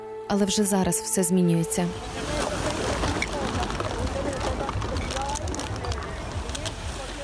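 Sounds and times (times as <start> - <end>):
speech: 0.3 - 2.4
waves washing onto a shore: 1.9 - 7.2.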